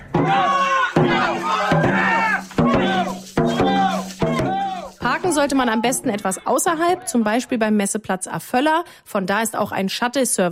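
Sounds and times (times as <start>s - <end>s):
crowd of spectators cheering and shouting at dragon boat race: 0.0s - 6.1s
sharp beats marking a steady pulse: 0.0s - 7.3s
speech: 5.4s - 10.5s.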